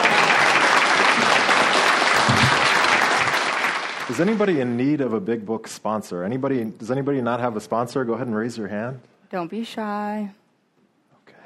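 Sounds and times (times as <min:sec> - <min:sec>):
room full of people at a group meeting applauding: 0:00.0 - 0:05.0
speech: 0:04.1 - 0:10.4.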